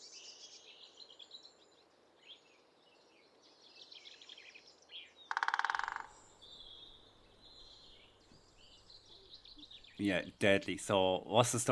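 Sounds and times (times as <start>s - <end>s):
small birds singing softly: 0.0s - 11.7s
great spotted woodpecker drumming: 5.2s - 7.0s
speech: 10.0s - 11.7s.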